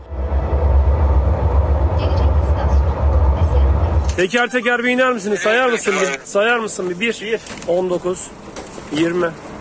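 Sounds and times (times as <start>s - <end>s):
moving metro train rumbling: 0.0s - 7.2s
speech: 4.2s - 9.5s.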